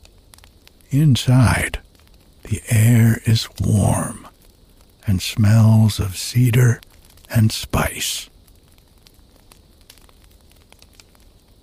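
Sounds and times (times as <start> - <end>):
fireplace fire crackling with pops and snaps: 0.0 - 11.6
speech: 0.9 - 1.8, 2.5 - 4.3, 5.0 - 8.3.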